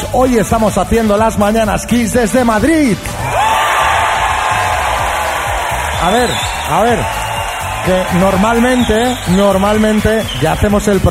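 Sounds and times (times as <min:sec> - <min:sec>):
speech: 0:00.1 - 0:03.4, 0:06.0 - 0:07.2, 0:07.8 - 0:11.0
live studio audience cheering with whoops and shouts: 0:03.2 - 0:11.0.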